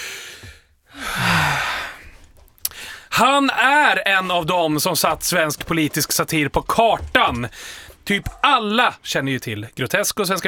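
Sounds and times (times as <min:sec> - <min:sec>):
deep breath in and out: 0:00.0 - 0:03.1, 0:07.6 - 0:08.0
speech: 0:03.2 - 0:10.4.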